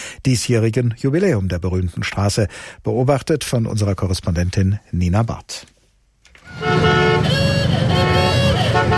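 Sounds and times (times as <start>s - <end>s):
speech: 0.2s - 5.7s
vintage car engines chugging past on a street: 6.5s - 8.9s.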